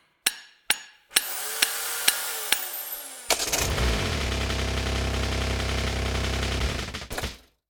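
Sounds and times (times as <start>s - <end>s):
car being repaired: 1.1s - 7.5s.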